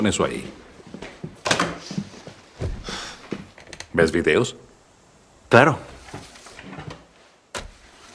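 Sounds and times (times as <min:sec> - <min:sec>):
speech: 0:00.0 - 0:01.0, 0:04.0 - 0:04.6, 0:05.5 - 0:06.3
door closing with soft thumps and knocks and a dull clunk: 0:02.6 - 0:03.0.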